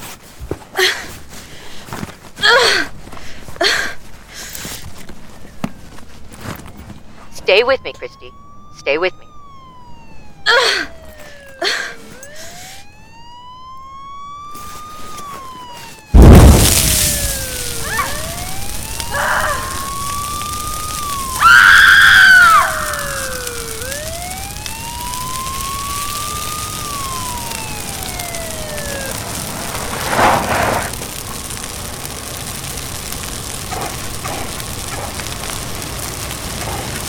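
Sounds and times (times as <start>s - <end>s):
rushing crackling roar of a burning car: 0.8s - 7.3s, 9.4s - 37.0s
paramedic and rescue crew emergency vehicle siren wailing: 6.3s - 37.0s
speech: 7.5s - 9.2s
car catching fire with a loud whooshing burst: 16.1s - 37.0s.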